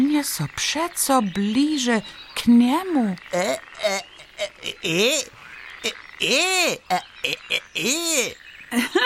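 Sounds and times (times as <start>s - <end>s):
speech: 0.1s - 9.0s
frog croaking: 2.7s - 8.8s.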